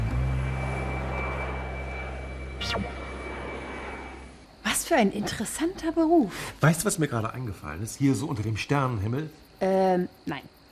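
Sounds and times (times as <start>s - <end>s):
airplane engine drone with faint high whine: 0.0s - 4.7s
speech: 2.8s - 3.0s, 4.9s - 10.6s.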